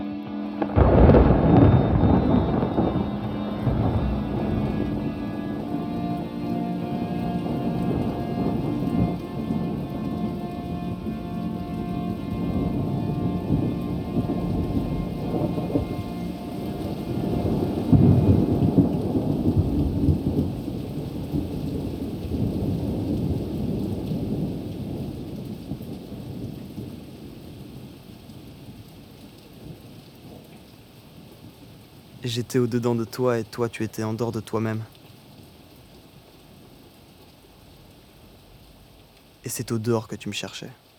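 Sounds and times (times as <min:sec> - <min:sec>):
heavy rain: 0:00.0 - 0:40.9
deep rolling thunder: 0:00.6 - 0:28.8
speech: 0:32.3 - 0:35.0, 0:39.5 - 0:40.9.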